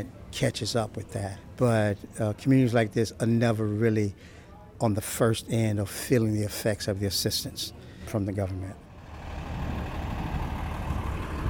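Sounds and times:
speech: 0:00.0 - 0:08.8
large bus engine idling: 0:08.8 - 0:11.4.

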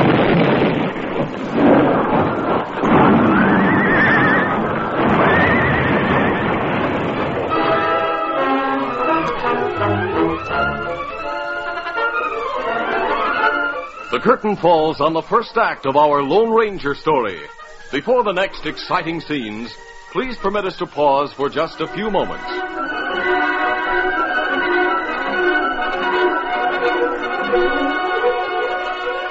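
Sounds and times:
rumbling noisy background: 0:00.0 - 0:29.2
loud drawn-out horse whinnies: 0:03.2 - 0:06.6
speech: 0:14.2 - 0:22.9.

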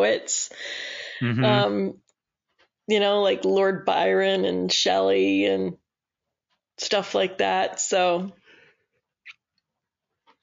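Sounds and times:
speech: 0:00.0 - 0:02.0, 0:02.9 - 0:05.8, 0:06.8 - 0:08.4
laughter: 0:01.2 - 0:01.7
person yawning: 0:01.2 - 0:01.7.

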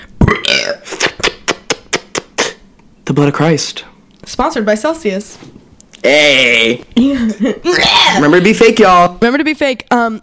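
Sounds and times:
loud burp with deep rumble and throaty tail: 0:00.2 - 0:00.9, 0:06.0 - 0:06.8, 0:07.7 - 0:08.4
speech: 0:00.7 - 0:01.1, 0:03.1 - 0:10.2.

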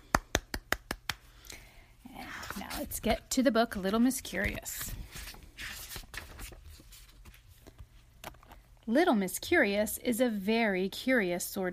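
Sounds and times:
single person clapping hands: 0:00.0 - 0:01.3
speech: 0:02.8 - 0:05.0, 0:08.9 - 0:11.7.

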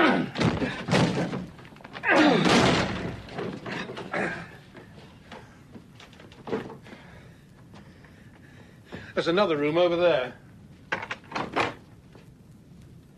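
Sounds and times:
locked door being forced open: 0:00.2 - 0:04.1
door splintering crash: 0:02.2 - 0:03.7
speech: 0:09.2 - 0:10.4.

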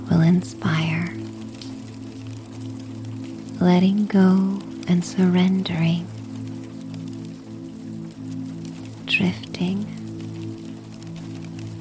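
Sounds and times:
low sustained ambient drone: 0:00.0 - 0:11.7
soft steady patter of raindrops falling: 0:00.0 - 0:11.7
speech: 0:00.1 - 0:01.1, 0:03.6 - 0:06.1, 0:09.1 - 0:10.0
person speaking in a hushed voice: 0:00.1 - 0:01.2, 0:03.6 - 0:06.1, 0:09.1 - 0:10.0.

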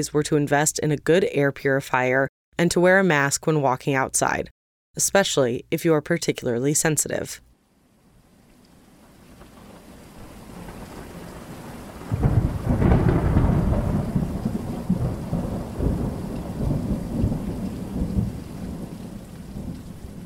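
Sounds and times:
speech: 0:00.0 - 0:07.5
steady monsoon rain: 0:07.6 - 0:20.2
loud clap of thunder with long deep rumble: 0:09.2 - 0:20.2.

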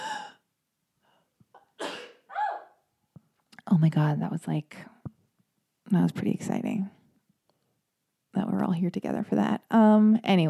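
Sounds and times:
person sneezing: 0:01.8 - 0:02.7
speech: 0:03.7 - 0:04.9, 0:05.9 - 0:07.0, 0:08.6 - 0:10.4.

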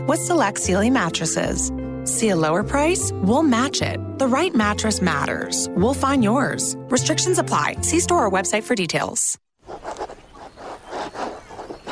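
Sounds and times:
speech: 0:00.0 - 0:09.9
fountain pen scratching across linen paper: 0:09.6 - 0:11.9.

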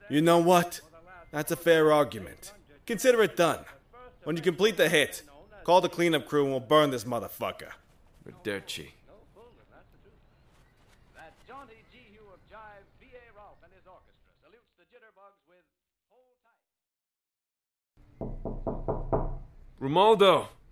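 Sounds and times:
speech: 0:00.1 - 0:09.0, 0:19.8 - 0:20.6
sharp loud knocks on a door: 0:18.2 - 0:19.6.

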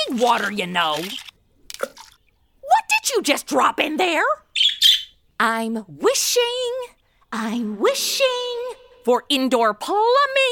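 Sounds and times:
speech: 0:00.1 - 0:01.2, 0:03.1 - 0:04.4, 0:05.4 - 0:10.5
bird chirping and squawking: 0:04.5 - 0:05.2.

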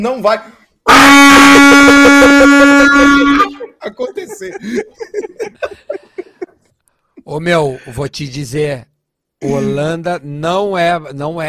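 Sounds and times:
speech: 0:00.0 - 0:06.0, 0:07.3 - 0:11.4
handheld horn corneta blaring: 0:00.9 - 0:03.6
laughter: 0:01.4 - 0:06.7.

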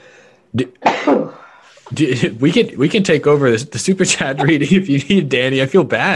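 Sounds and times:
speech: 0:00.5 - 0:06.1
sneeze: 0:00.8 - 0:01.5.

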